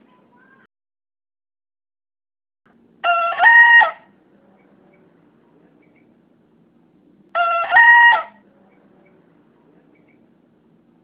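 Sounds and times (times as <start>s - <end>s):
young bekisar green junglefowl hybrid crowing: 3.0s - 4.2s, 7.3s - 8.4s.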